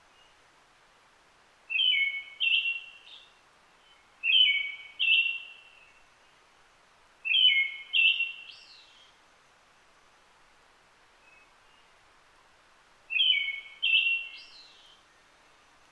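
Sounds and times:
brown-headed thrush singing whistled notes: 1.7s - 3.2s, 3.8s - 6.0s, 7.2s - 9.1s, 13.1s - 15.0s.

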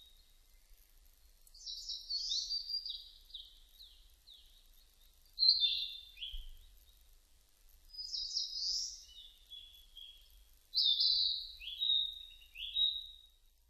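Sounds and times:
soft low background noise: 0.0s - 13.6s
Narcissus flycatcher song: 1.6s - 4.6s, 5.4s - 6.8s, 7.9s - 13.4s.

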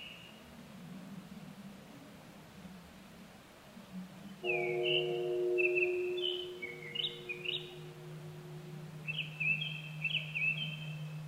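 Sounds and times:
low steady hum: 0.4s - 11.2s
Japanese thrush singing: 4.4s - 11.2s.

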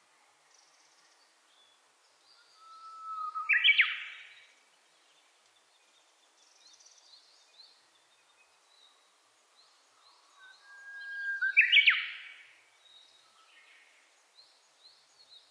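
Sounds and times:
faint high chirps from other birds: 0.5s - 5.2s, 5.8s - 15.4s
Japanese bush warbler singing: 0.5s - 15.4s.

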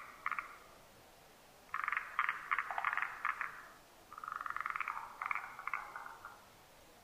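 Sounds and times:
forest green tree frog calling in rattling pulses: 0.0s - 0.8s, 1.7s - 6.5s.

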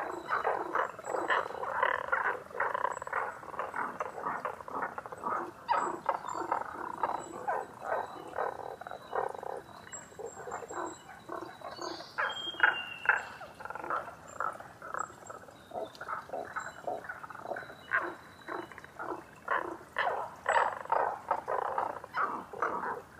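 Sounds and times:
Tago's brown frog croaking in a chorus: 0.0s - 23.1s.

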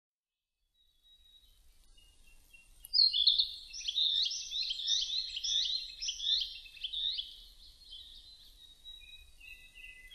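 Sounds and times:
Narcissus flycatcher whistled song: 2.9s - 10.1s.

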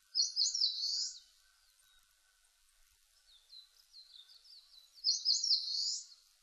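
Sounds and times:
Eastern crowned warbler singing buzzy phrases: 0.2s - 2.1s, 3.2s - 6.3s.

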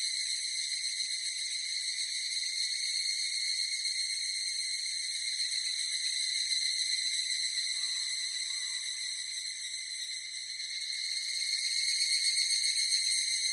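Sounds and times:
evening cicada song: 0.0s - 13.5s.

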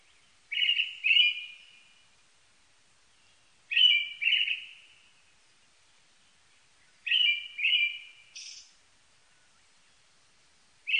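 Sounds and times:
brown-headed thrush song: 0.5s - 1.7s, 3.7s - 4.8s, 7.1s - 8.7s.

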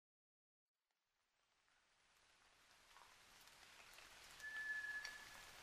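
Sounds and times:
White's thrush whistling at night: 4.4s - 5.5s.

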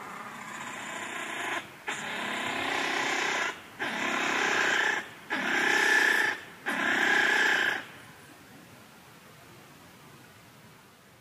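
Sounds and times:
Japanese giant flying squirrel rasping screeches: 0.0s - 7.9s.

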